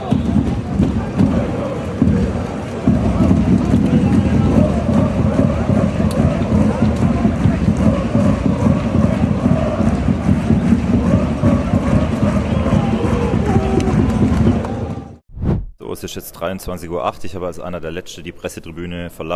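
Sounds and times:
football fans in a stadium roaring and chanting after a match: 0.0 - 15.2
speech: 16.1 - 19.3.

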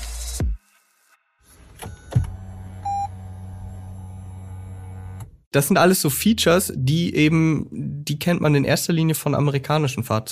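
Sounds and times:
car door thunking shut: 1.7 - 2.5
electric steering column motor of a car moving the steering wheel: 1.9 - 5.4
brief electronic beep: 2.8 - 3.1
speech: 5.5 - 10.3.

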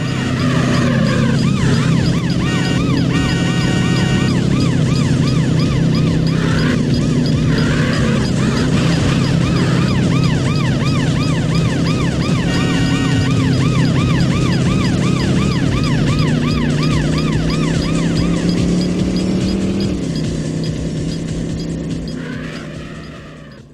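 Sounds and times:
luxury sports car and racing car engines roaring in racing video game: 0.0 - 23.7
police siren wailing in racing video game car chase: 0.0 - 23.7.

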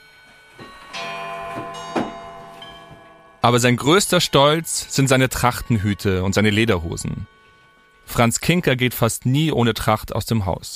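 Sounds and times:
bright clock chime ringing: 0.0 - 9.4
old clocks ticking in a small apartment: 0.6 - 9.7
speech: 3.4 - 7.4, 8.1 - 10.7.

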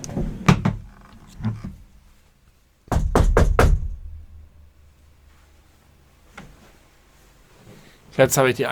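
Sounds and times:
knocking on a door: 2.9 - 4.5
speech: 8.2 - 8.7.

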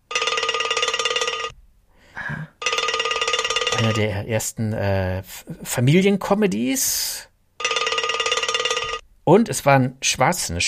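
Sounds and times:
cowbell ringing: 0.1 - 1.5, 2.6 - 4.0, 7.6 - 9.0
speech: 3.8 - 7.3, 9.3 - 10.6.

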